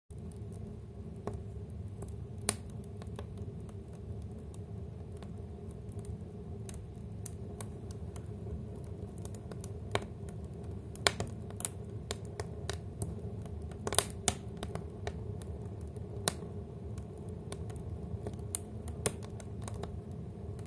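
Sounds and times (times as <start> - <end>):
fire burning: 0.1 - 20.6.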